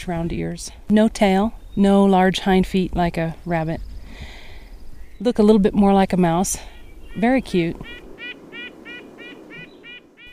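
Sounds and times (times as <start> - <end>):
speech: 0.0 - 4.3, 5.2 - 8.0
low background hiss: 0.0 - 10.3
pika squeaky calls: 6.7 - 10.3.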